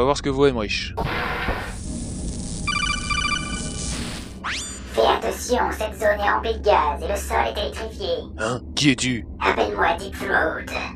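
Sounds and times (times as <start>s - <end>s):
speech: 0.0s - 1.5s, 5.0s - 10.9s
ambience: 0.8s - 10.9s
default phone ringtone trilling: 2.7s - 3.8s.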